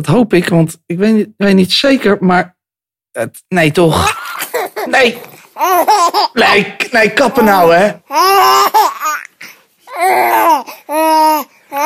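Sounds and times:
speech: 0:00.0 - 0:02.6, 0:03.2 - 0:04.2, 0:04.9 - 0:09.3, 0:10.0 - 0:11.8
baby laughing and babbling happily: 0:04.0 - 0:11.8.

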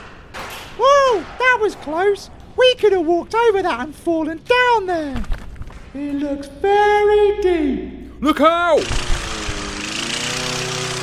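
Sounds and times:
speech: 0:01.1 - 0:09.1
lawnmower engine roaring past: 0:08.8 - 0:11.0.

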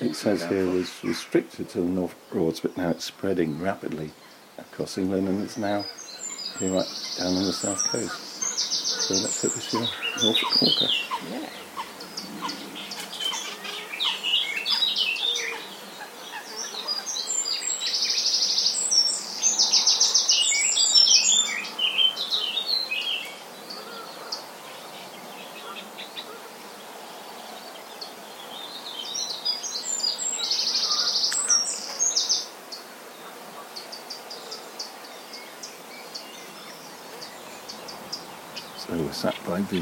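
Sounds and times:
Canada geese honking by a lake: 0:00.0 - 0:01.5, 0:05.8 - 0:17.1
steady outdoor hush: 0:00.0 - 0:39.8
speech: 0:00.1 - 0:11.6
quieter bird chirps: 0:05.4 - 0:26.4, 0:27.6 - 0:39.8.

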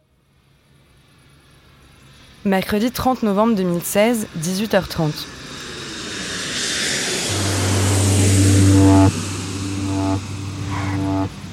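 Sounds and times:
speech: 0:02.4 - 0:05.4
private jet roaring while landing on runway: 0:05.3 - 0:11.5.

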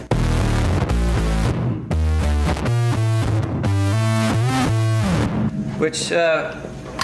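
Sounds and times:
distorted bass guitar riff through a bass synth effect: 0:00.0 - 0:05.7
speech: 0:05.8 - 0:06.7.

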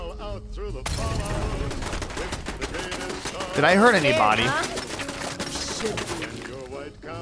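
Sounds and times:
speech: 0:00.4 - 0:04.8, 0:05.8 - 0:06.2
heavy machine gun fire in a video game: 0:01.0 - 0:06.1.

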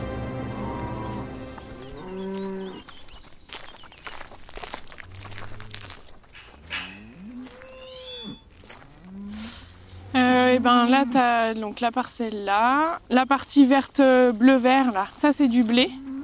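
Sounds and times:
faint hoof shuffling and clatter: 0:00.0 - 0:16.2
herd of Limousin cows mooing: 0:00.3 - 0:02.9, 0:06.6 - 0:11.7, 0:15.7 - 0:16.2
speech: 0:10.6 - 0:16.0.

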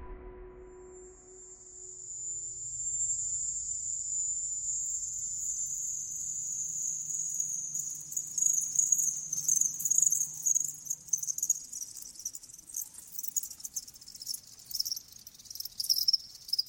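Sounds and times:
faint low rumble: 0:00.0 - 0:02.8
crickets chirring: 0:02.0 - 0:16.6.

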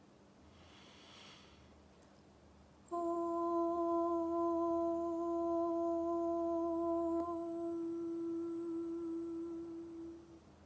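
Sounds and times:
high-pitched chanted om tone during a guided meditation: 0:02.9 - 0:10.4.

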